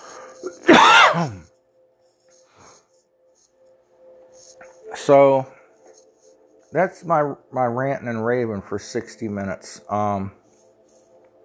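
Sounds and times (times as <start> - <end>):
harsh cough: 0.5 - 1.5
speech: 1.1 - 1.5, 5.1 - 5.5, 6.7 - 10.4.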